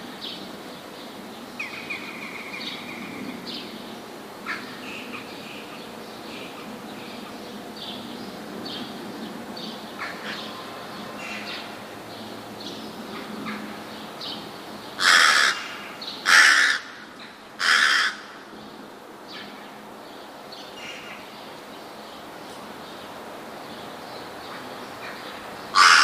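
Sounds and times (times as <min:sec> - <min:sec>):
rook calling with rasping caws: 0:04.4 - 0:05.6, 0:10.0 - 0:11.8, 0:15.0 - 0:18.5, 0:25.0 - 0:26.0.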